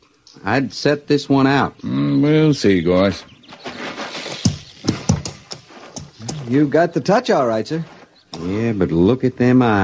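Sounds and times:
speech: 0:00.4 - 0:03.3, 0:06.5 - 0:09.8
horse hooves clip-clopping: 0:03.0 - 0:08.5.

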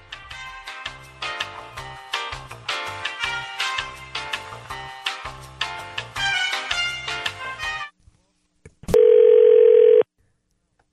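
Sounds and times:
upbeat music: 0:00.0 - 0:07.8
outgoing phone call ringing tone: 0:09.0 - 0:10.1.

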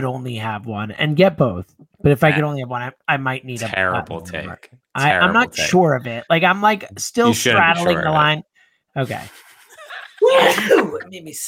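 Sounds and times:
speech: 0:00.0 - 0:09.4, 0:10.2 - 0:11.4
person sneezing: 0:10.3 - 0:11.0.

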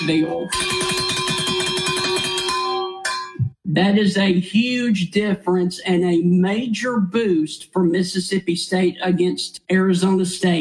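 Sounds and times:
speech: 0:00.0 - 0:01.2, 0:03.7 - 0:10.5
cowbells rung by football supporters: 0:00.0 - 0:03.4.

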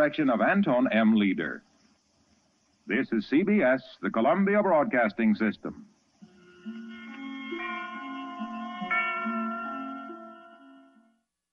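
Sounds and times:
speech: 0:00.0 - 0:01.7, 0:02.9 - 0:05.9
dramatic radio drama closing theme music with chords and low bass: 0:06.3 - 0:11.0.

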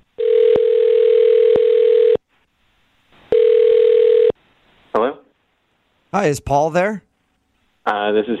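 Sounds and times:
telephone dial tone: 0:00.2 - 0:02.2, 0:03.4 - 0:04.3
speech: 0:06.2 - 0:07.1, 0:07.9 - 0:08.3.

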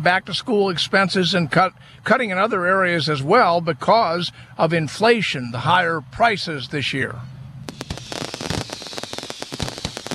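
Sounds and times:
speech: 0:00.0 - 0:07.4
fireworks exploding in a dense barrage of pops and bangs: 0:07.7 - 0:10.1.

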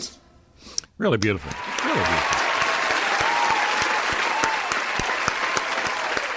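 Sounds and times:
speech: 0:01.0 - 0:02.1
canned applause track from a large crowd: 0:01.4 - 0:06.3.

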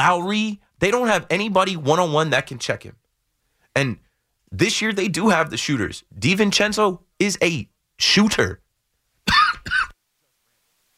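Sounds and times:
speech: 0:00.0 - 0:03.0, 0:03.7 - 0:08.6
person coughing: 0:09.2 - 0:10.0.

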